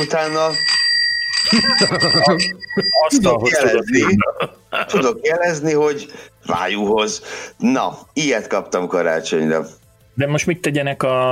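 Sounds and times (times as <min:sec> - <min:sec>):
speech: 0:00.0 - 0:00.7, 0:01.4 - 0:11.2
small bell ringing on a holder for six shot glasses: 0:00.0 - 0:03.9
laughter: 0:01.4 - 0:05.2.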